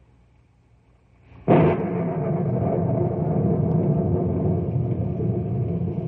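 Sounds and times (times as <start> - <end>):
thunderclap: 1.4 - 6.0.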